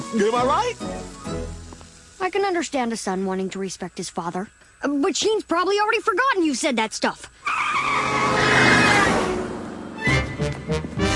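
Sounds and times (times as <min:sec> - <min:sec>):
speech: 0:00.1 - 0:01.4, 0:02.2 - 0:08.1
long screech of skidding tires: 0:07.4 - 0:11.1
road traffic noise: 0:07.4 - 0:11.1
short loud bursts of car noise: 0:07.4 - 0:11.1.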